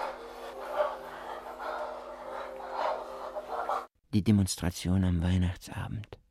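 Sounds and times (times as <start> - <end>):
heavy rhythmic panting breaths: 0.0 - 3.9
speech: 4.1 - 6.2.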